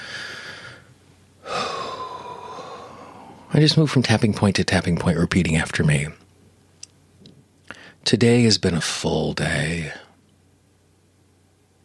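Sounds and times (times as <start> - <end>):
deep breaths: 0.0 - 3.5, 7.7 - 8.0
speech: 3.5 - 6.2, 8.1 - 10.0.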